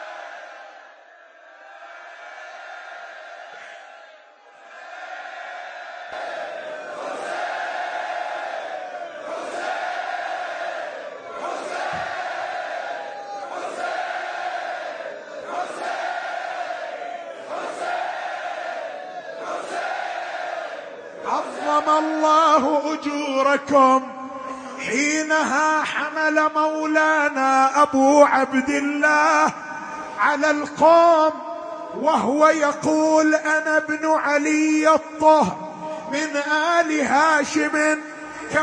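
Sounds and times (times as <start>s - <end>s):
large crowd chanting a name in unison: 1.5s - 22.0s
speech: 23.0s - 24.1s, 25.0s - 29.6s, 30.2s - 38.6s.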